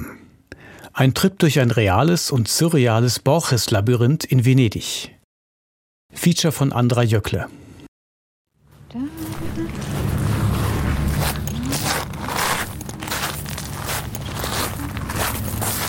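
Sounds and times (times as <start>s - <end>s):
speech: 1.0s - 5.2s, 6.1s - 7.6s
footsteps into a garden labyrinth on San Giorgio Maggiore, Venice, Italy: 9.2s - 15.8s.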